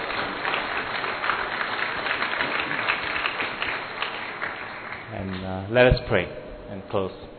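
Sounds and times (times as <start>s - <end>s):
audience applauding: 0.0s - 5.1s
speech: 5.7s - 7.3s.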